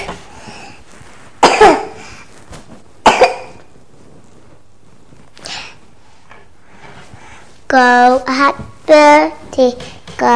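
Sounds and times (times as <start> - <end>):
person coughing: 1.5 - 2.0, 3.1 - 3.5
speech: 8.2 - 10.3.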